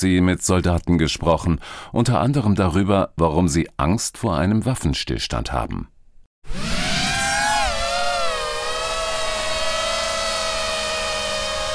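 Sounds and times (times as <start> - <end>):
speech: 0.0 - 6.8
small FPV drone buzzing: 6.5 - 11.7.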